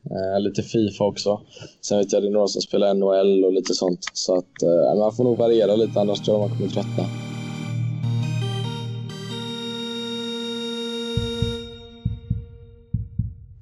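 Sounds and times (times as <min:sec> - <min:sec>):
speech: 0:00.2 - 0:07.2
sustained synth chord: 0:05.1 - 0:12.4
heartbeat effect of deep thumps: 0:11.2 - 0:13.5.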